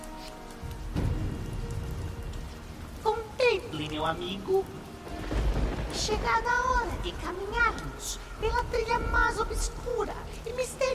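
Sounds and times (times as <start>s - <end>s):
heavy rain during a thunderstorm with strong winds: 0.0s - 10.9s
deep low rumble of thunder: 0.6s - 10.9s
speech: 3.8s - 5.2s, 5.9s - 10.9s.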